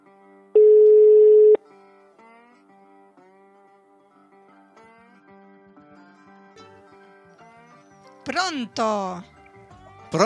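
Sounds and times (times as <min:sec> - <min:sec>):
ringback tone from an outgoing phone call: 0:00.6 - 0:01.6
speech: 0:08.3 - 0:09.3.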